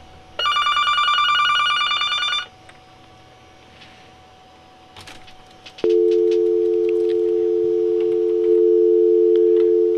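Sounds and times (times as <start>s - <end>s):
telephone dial tone: 0.4s - 2.5s, 5.8s - 9.9s
telephone ringing: 0.4s - 2.5s, 5.8s - 9.9s.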